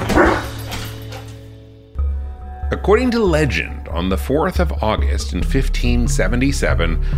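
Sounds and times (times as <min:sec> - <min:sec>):
dog barking: 0:00.0 - 0:01.3
speech: 0:02.7 - 0:07.1.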